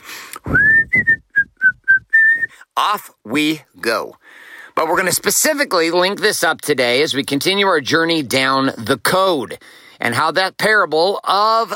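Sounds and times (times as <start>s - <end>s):
person whistling a short bright tune: 0.4s - 2.6s
speech: 2.8s - 11.7s.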